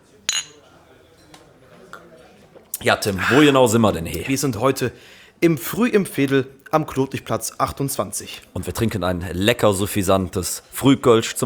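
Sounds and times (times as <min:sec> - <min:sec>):
beer glasses clinking in a toast over Kölsch: 0:00.3 - 0:01.3
speech: 0:02.8 - 0:11.4.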